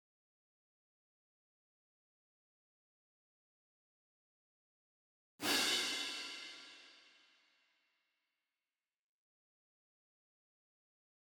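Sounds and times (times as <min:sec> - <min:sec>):
cymbals: 0:05.4 - 0:07.1.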